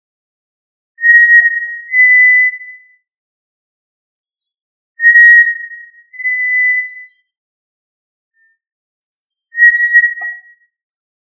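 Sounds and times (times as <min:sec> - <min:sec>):
tinamou whistled calls: 0:01.0 - 0:02.8, 0:05.0 - 0:07.3, 0:09.5 - 0:10.6.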